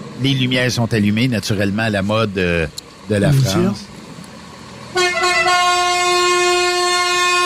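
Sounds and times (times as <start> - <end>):
speech: 0.2 - 3.9
truck's TGV-style air horn blaring: 4.9 - 7.4.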